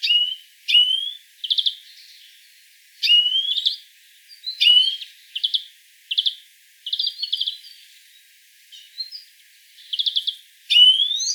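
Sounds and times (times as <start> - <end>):
European greenfinch calls: 0.0 - 2.2, 3.0 - 3.8, 4.4 - 7.8, 8.7 - 11.3.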